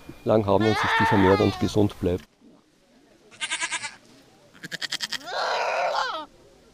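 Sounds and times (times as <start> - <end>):
speech: 0.2 - 2.3
tethered goats bleating in the grass: 0.6 - 1.8, 3.3 - 4.0, 4.6 - 6.3.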